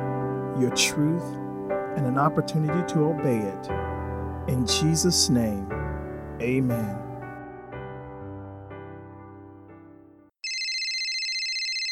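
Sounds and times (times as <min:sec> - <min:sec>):
speech: 0:00.6 - 0:01.4, 0:02.0 - 0:05.8, 0:06.4 - 0:07.1
mobile phone ringtone melody of sustained electronic notes: 0:10.4 - 0:11.9.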